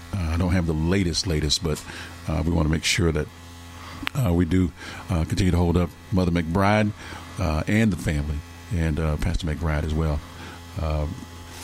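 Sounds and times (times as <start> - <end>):
low steady electrical hum: 0.0 - 11.6
speech: 0.2 - 11.3.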